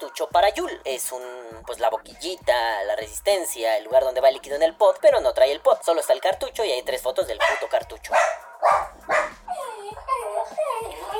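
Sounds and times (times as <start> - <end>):
speech: 0.0 - 8.9
dogs barking at an intruder: 7.2 - 11.1.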